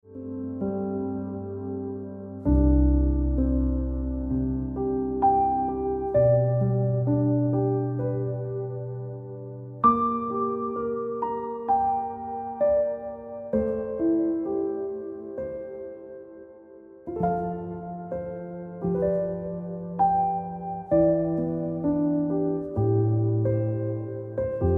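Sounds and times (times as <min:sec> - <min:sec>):
piano ringtone music: 0:00.1 - 0:24.7.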